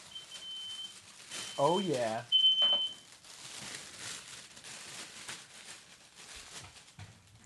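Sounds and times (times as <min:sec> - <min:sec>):
high-pitched smoke alarm beep: 0:00.1 - 0:03.0
speech: 0:01.6 - 0:02.4.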